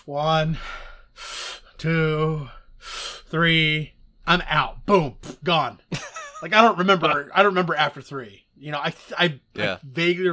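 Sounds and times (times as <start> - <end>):
person imitating deep breathing through a breath mask: 0.0 - 3.4, 9.6 - 9.9
speech: 0.0 - 10.3
laughter: 5.2 - 7.3.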